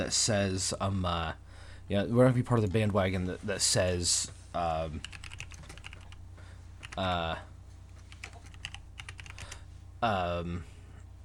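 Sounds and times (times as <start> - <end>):
speech: 0.0 - 5.2, 7.0 - 7.5, 10.0 - 10.7
fast typing on a computer keyboard: 5.0 - 6.2, 6.8 - 7.1, 8.1 - 9.6.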